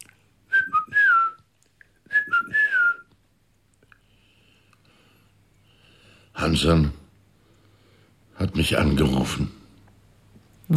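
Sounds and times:
man whistling as a signal: 0.5 - 3.2
speech: 6.4 - 7.0, 8.6 - 9.6.

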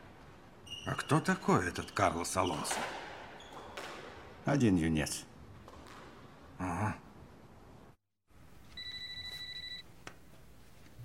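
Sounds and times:
low noise: 0.0 - 11.0
speech: 0.9 - 3.0, 4.4 - 5.3, 6.6 - 7.0
telephone ringing with electronic trill: 8.8 - 9.8.

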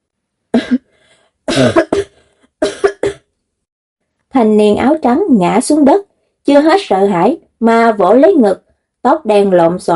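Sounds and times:
gasping for breath: 0.8 - 1.4
young man coughing violently after being choked: 1.5 - 3.2
speech: 1.6 - 1.8, 4.4 - 9.9.

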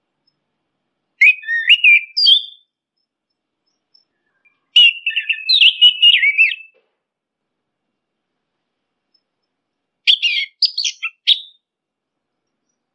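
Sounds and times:
orange-headed thrush training song: 1.2 - 2.8, 4.0 - 6.8, 10.1 - 11.6.

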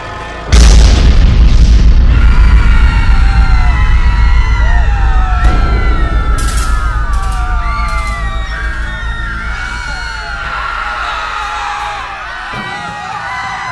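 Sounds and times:
hand grenade explosion in a passing car: 0.5 - 11.2.

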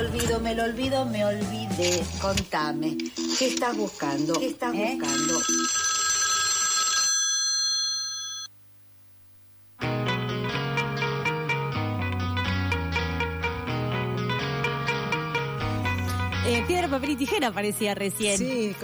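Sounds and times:
music: 0.0 - 5.4, 9.8 - 18.8
speech: 0.4 - 5.8, 16.9 - 18.8
electronic telephone ringing: 3.0 - 8.5.

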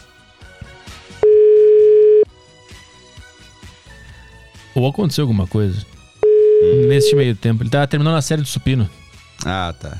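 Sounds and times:
telephone ringback tone from an unconnected call: 1.2 - 2.3, 6.2 - 7.3
speech: 4.8 - 5.9, 6.6 - 9.9.

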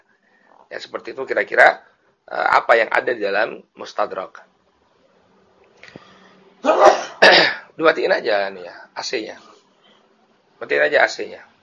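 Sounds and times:
speech: 0.7 - 4.5, 7.8 - 9.5, 10.6 - 11.5
person sneezing: 5.9 - 7.7.

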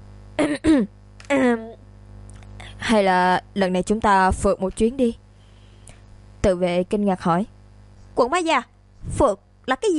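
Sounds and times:
person clearing throat: 0.4 - 0.9
speech: 0.4 - 1.8, 2.9 - 5.2, 6.4 - 7.6, 8.2 - 9.9.

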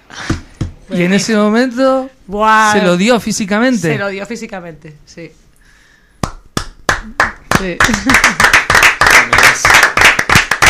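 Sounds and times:
speech: 0.9 - 5.4, 7.0 - 8.6
audience applause at a town council session: 7.2 - 10.6.

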